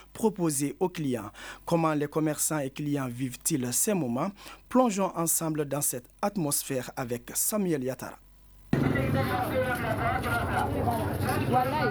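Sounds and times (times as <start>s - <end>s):
speech: 0.2s - 8.2s, 9.0s - 11.8s
customers haggling at a market: 8.8s - 11.8s
merchants calling out selling produce: 8.8s - 11.8s
motorbike engines rumbling: 8.8s - 11.8s.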